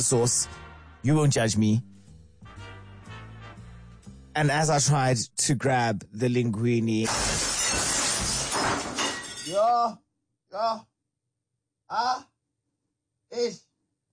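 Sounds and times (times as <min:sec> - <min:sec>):
speech: 0:00.0 - 0:01.9, 0:04.4 - 0:07.4, 0:09.5 - 0:10.9, 0:11.9 - 0:12.3, 0:13.3 - 0:13.7
glass jar of pasta sauce smashing on a white tile floor: 0:07.1 - 0:09.6.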